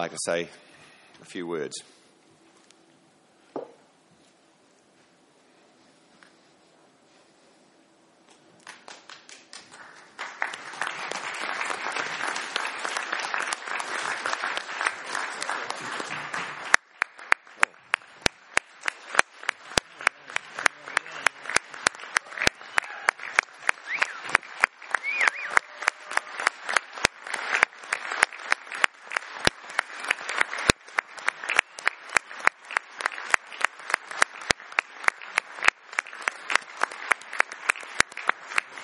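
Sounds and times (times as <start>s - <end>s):
speech: 0.0s - 2.0s
audience applause at a meeting: 8.6s - 38.8s.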